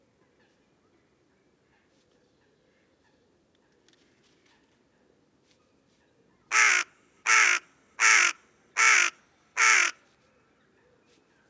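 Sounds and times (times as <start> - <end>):
carrion crow Corvus corone cawing: 6.5 - 10.0.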